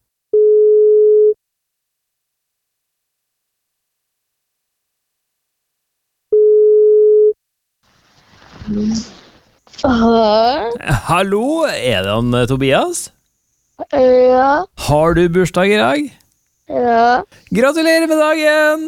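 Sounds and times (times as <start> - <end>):
telephone ringback tone while placing a call: 0.4 - 1.4, 6.3 - 7.4
rustly telephone pickup noise as the line connects: 7.8 - 9.9
speech: 8.7 - 9.1, 9.8 - 13.2, 13.8 - 18.8.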